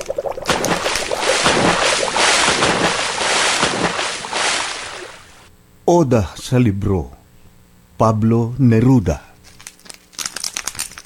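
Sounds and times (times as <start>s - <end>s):
rushing water: 0.0s - 5.5s
churning ocean surf: 0.7s - 5.5s
speech: 5.9s - 7.2s, 8.0s - 9.2s.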